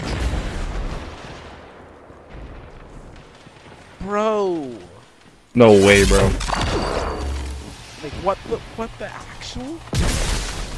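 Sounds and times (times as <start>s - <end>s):
grenade explosion in a player-versus-player video game match: 0.0s - 4.0s, 5.6s - 8.2s, 9.9s - 10.7s
speech: 4.0s - 4.9s, 5.6s - 6.9s, 8.0s - 10.2s.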